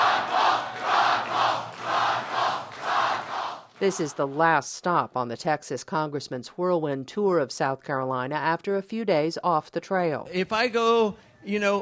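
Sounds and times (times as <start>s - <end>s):
packed crowd cheering and roaring in a bar: 0.0s - 4.5s
speech: 3.8s - 11.8s.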